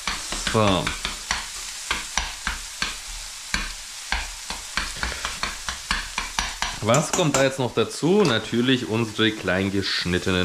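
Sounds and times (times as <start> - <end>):
scraping strokes as minced meat is stirred in a pan: 0.0 - 7.5
minced meat sizzling in a frying pan: 0.0 - 10.4
speech: 0.5 - 1.0, 6.8 - 10.4.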